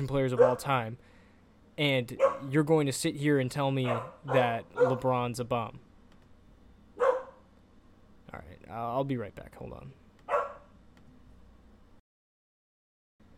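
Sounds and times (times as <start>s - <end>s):
speech: 0.0s - 1.1s, 1.8s - 5.8s, 8.3s - 10.0s
low hum: 0.0s - 12.0s, 13.2s - 13.3s
female dog barking: 0.3s - 0.7s, 2.2s - 2.5s, 3.8s - 5.1s, 7.0s - 7.4s, 10.3s - 10.7s.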